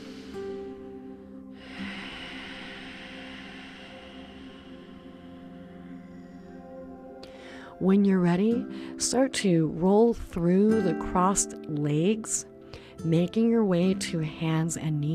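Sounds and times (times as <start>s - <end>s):
slow breath in and out through the nose in a cross-legged yoga pose: 0.0s - 7.8s
steady tonal hum: 0.0s - 15.1s
speech: 7.8s - 15.1s.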